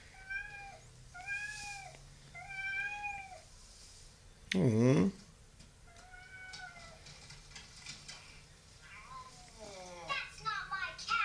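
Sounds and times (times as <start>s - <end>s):
cat meowing: 0.1s - 3.5s, 5.9s - 7.1s
speech: 4.6s - 5.2s.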